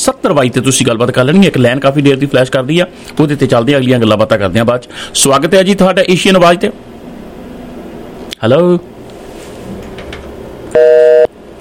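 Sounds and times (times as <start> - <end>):
speech: 0.0 - 6.9, 8.4 - 9.0
phone call disconnect tone as the line drops: 10.7 - 11.3.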